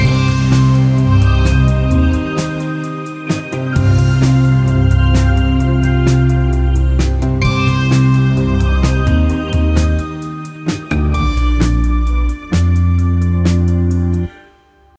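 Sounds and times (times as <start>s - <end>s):
adventurous positive music: 0.0s - 14.3s.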